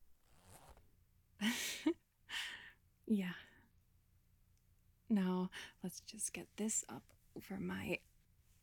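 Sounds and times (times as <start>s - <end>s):
zipper on a dress being pulled: 0.2s - 0.8s
speech: 3.1s - 3.5s, 5.1s - 8.1s.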